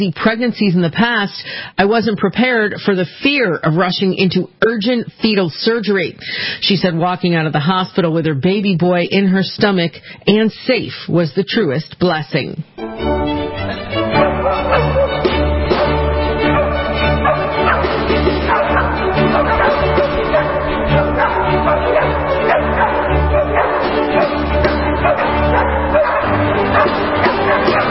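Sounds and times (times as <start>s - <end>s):
speech: 0.0s - 13.9s
chamber orchestra playing a symphony: 12.8s - 27.8s
dogs barking and yipping: 13.6s - 27.8s.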